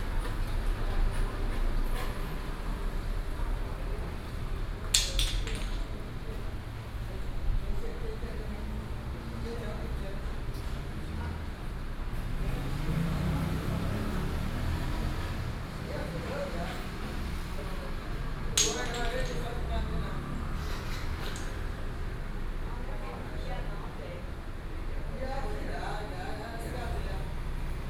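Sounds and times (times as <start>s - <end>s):
dense murmur of voices: 0.2s - 27.7s
divination blocks clattering at a City God temple: 4.9s - 6.1s, 18.6s - 19.7s, 21.2s - 21.6s.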